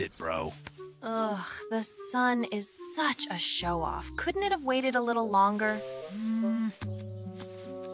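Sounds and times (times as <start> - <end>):
speech: 0.0 - 7.5
cow mooing: 6.1 - 6.8.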